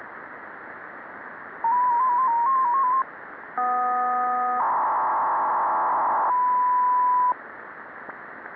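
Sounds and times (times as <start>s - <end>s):
PSK500 serial amateur radio mode signal: 1.6s - 7.4s.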